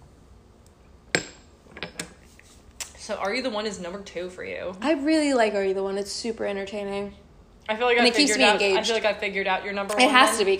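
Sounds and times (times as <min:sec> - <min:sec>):
glasses knocking and tapping on a table: 0:01.1 - 0:02.1
speech: 0:03.1 - 0:10.5.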